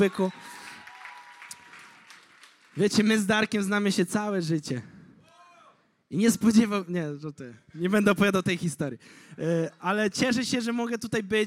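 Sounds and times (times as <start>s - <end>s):
speech: 0.0s - 0.6s, 2.8s - 4.9s, 6.1s - 11.4s
audience applauding: 0.0s - 3.2s.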